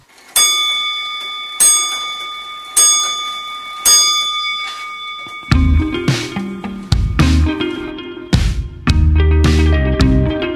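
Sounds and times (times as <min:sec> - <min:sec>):
time signal ringing pips: 0:00.4 - 0:08.8
loud full low chiming sound: 0:00.4 - 0:10.4.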